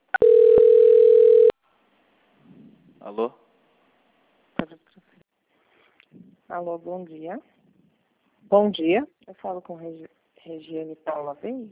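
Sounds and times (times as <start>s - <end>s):
steady mid-pitched telephone tone during a call transfer: 0.0s - 1.5s
speech: 3.1s - 3.4s, 6.5s - 7.6s, 8.5s - 11.7s.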